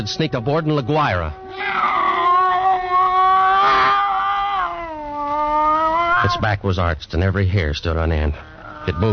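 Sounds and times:
speech: 0:00.0 - 0:02.0, 0:06.2 - 0:09.1
cat yowling in a long wail: 0:00.6 - 0:06.5, 0:08.4 - 0:09.1.

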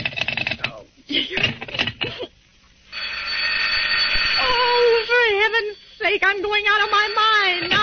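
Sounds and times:
steady hiss: 0:00.5 - 0:07.8
speech: 0:01.1 - 0:02.3, 0:06.1 - 0:07.7
old-style telephone bell ringing: 0:02.9 - 0:07.8.

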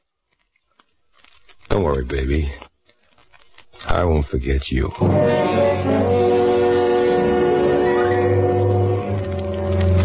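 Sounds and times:
speech: 0:01.7 - 0:02.7, 0:04.0 - 0:06.2
subway train horn blaring: 0:05.0 - 0:09.3.

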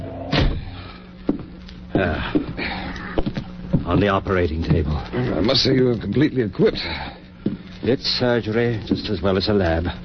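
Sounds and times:
low hum: 0:00.0 - 0:10.0
door kicked shut: 0:00.2 - 0:00.8
shuffling steps: 0:01.0 - 0:10.0
speech: 0:02.0 - 0:02.8, 0:03.9 - 0:07.2, 0:07.8 - 0:10.0.

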